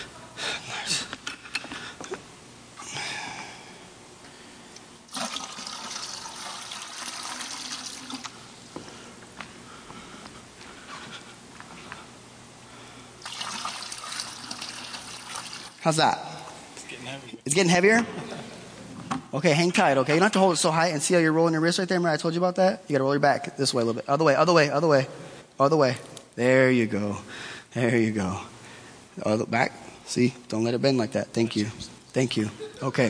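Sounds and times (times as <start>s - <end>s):
water pouring into a container: 5.1s - 8.3s, 13.2s - 15.8s
speech: 15.9s - 16.3s, 17.2s - 18.2s, 19.3s - 28.5s, 29.2s - 33.0s.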